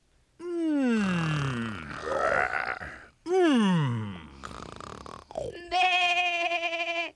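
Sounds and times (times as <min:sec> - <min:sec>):
child growling and grunting vocal sounds: 0:00.4 - 0:04.4, 0:05.3 - 0:05.9
child imitating a sheep bleating: 0:05.5 - 0:07.1.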